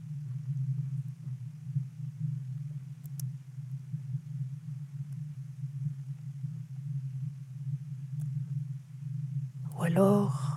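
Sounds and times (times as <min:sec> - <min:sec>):
steady low hum: 0:00.0 - 0:10.5
faint high clicks: 0:03.0 - 0:03.4
speech: 0:09.8 - 0:10.4.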